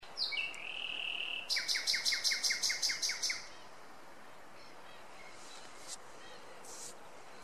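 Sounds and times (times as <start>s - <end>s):
common nightingale Luscinia megarhynchos song: 0.0s - 7.4s.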